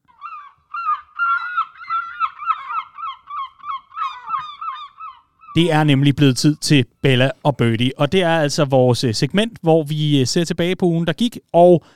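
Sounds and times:
flock of seagulls squawking: 0:00.0 - 0:05.6
speech: 0:05.6 - 0:11.9.

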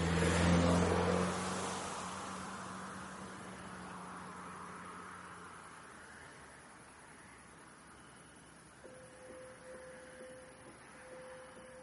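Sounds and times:
car driving away down a small dark road: 0:00.0 - 0:06.5
broadband road noise: 0:00.0 - 0:11.8.

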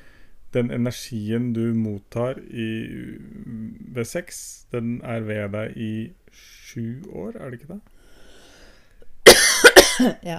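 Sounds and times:
speech: 0:00.5 - 0:07.9, 0:10.0 - 0:10.3
person coughing: 0:09.3 - 0:10.2.

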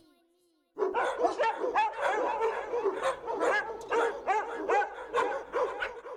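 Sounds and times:
dog barking and yipping: 0:00.8 - 0:06.1.

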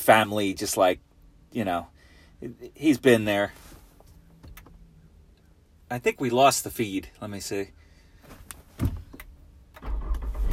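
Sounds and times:
speech: 0:00.0 - 0:03.6, 0:05.9 - 0:08.4
car engine being restarted and running: 0:09.6 - 0:10.5.

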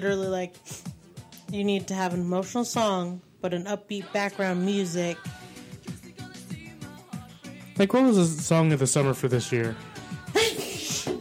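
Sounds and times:
speech: 0:00.0 - 0:00.9, 0:01.5 - 0:05.4, 0:07.8 - 0:10.0
person sneezing: 0:10.3 - 0:11.2.

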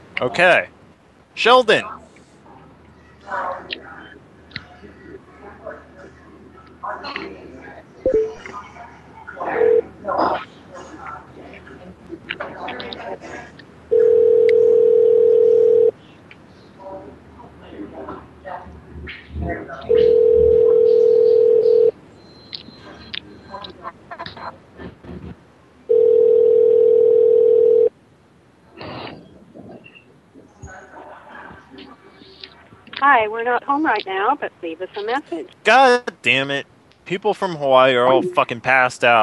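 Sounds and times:
speech: 0:00.2 - 0:00.8, 0:01.4 - 0:02.0, 0:33.2 - 0:39.2
soft talking: 0:01.4 - 0:21.9, 0:22.6 - 0:25.4, 0:28.7 - 0:39.2
telephone ringing on an outgoing call: 0:13.9 - 0:15.9, 0:19.9 - 0:21.9, 0:25.9 - 0:27.9.

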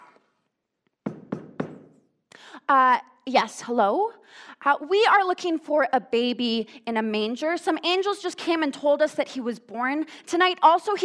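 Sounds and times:
knocking on a wooden door: 0:01.1 - 0:01.9
speech: 0:02.7 - 0:11.0.

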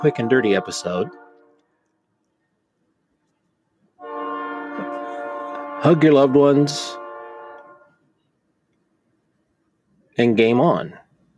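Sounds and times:
speech: 0:00.0 - 0:01.2, 0:05.8 - 0:07.0, 0:10.2 - 0:11.0
train horn blaring: 0:00.0 - 0:01.7, 0:04.0 - 0:08.1.

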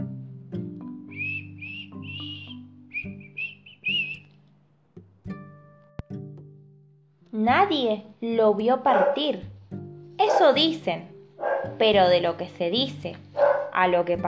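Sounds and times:
soft whistling of a short wandering tune: 0:01.1 - 0:04.3
speech: 0:07.4 - 0:09.5, 0:10.2 - 0:11.1, 0:11.7 - 0:13.2, 0:13.8 - 0:14.2.

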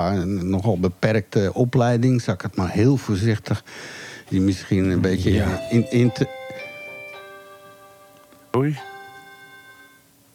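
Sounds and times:
speech: 0:00.0 - 0:06.4, 0:08.6 - 0:08.9
doorbell chiming with two struck tones: 0:05.3 - 0:10.1.

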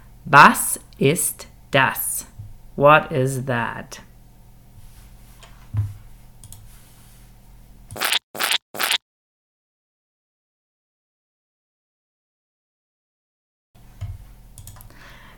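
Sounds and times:
speech: 0:00.2 - 0:02.1, 0:02.8 - 0:04.1
toothpaste tube squeezed with squelching: 0:08.0 - 0:09.0.

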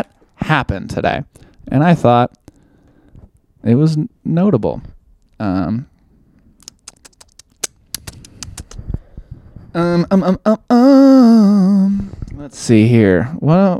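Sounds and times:
speech: 0:00.5 - 0:02.4, 0:03.6 - 0:05.9, 0:09.8 - 0:13.7
typing on a computer keyboard: 0:06.6 - 0:08.9.

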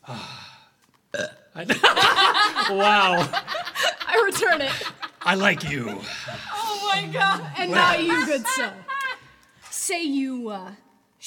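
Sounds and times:
faint breathy sounds: 0:00.0 - 0:00.8
person vocally imitating a loud drawn-out belch: 0:01.1 - 0:01.6
speech: 0:01.2 - 0:02.1, 0:02.7 - 0:03.5, 0:04.2 - 0:08.9, 0:09.9 - 0:11.2
laughter: 0:01.7 - 0:09.4.

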